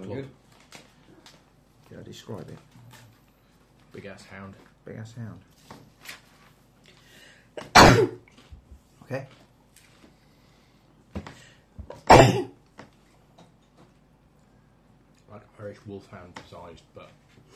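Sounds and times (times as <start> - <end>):
speech: 0.1 - 0.8, 1.9 - 3.0, 3.9 - 5.8, 9.1 - 9.4, 15.7 - 17.5
person sneezing: 7.6 - 8.2, 12.0 - 12.5.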